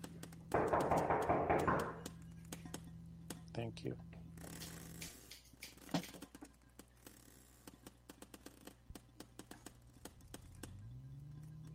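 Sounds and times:
sharp irregular knocking on a door: 0:00.5 - 0:02.0
speech: 0:03.6 - 0:04.1.

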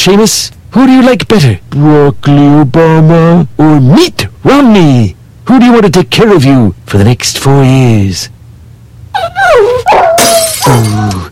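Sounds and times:
speech: 0:00.0 - 0:08.3, 0:09.2 - 0:11.3
dog whimpering and yipping: 0:09.1 - 0:11.3.

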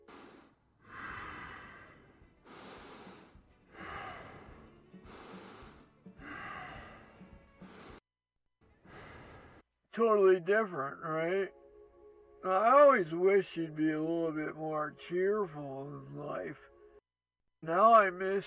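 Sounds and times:
woman breathing heavily with raspy snorting breaths: 0:00.0 - 0:08.1, 0:08.7 - 0:09.7
speech: 0:10.0 - 0:11.6, 0:12.4 - 0:16.7, 0:17.6 - 0:18.4.

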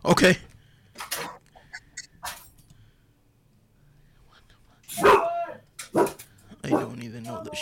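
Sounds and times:
low hum: 0:00.0 - 0:07.6
speech: 0:00.1 - 0:00.5
dog barking: 0:05.0 - 0:07.0.

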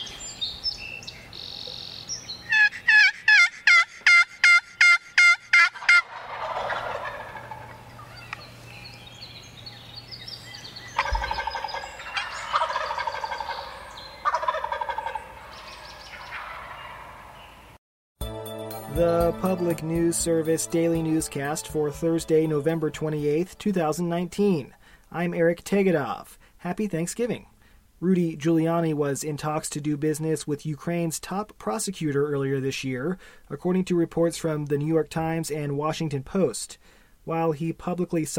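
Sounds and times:
flock of turkeys gobbling and chattering: 0:01.4 - 0:08.4, 0:10.9 - 0:17.6
speech: 0:19.0 - 0:38.3.

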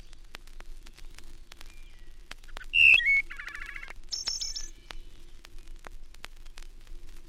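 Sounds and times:
light crackling background: 0:00.0 - 0:07.2
wood thrush singing: 0:01.5 - 0:05.2.

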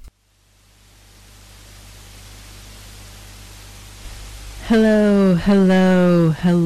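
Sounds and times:
faint low hum: 0:00.0 - 0:06.6
FM radio dial static: 0:02.2 - 0:06.6
speech: 0:04.7 - 0:06.6.

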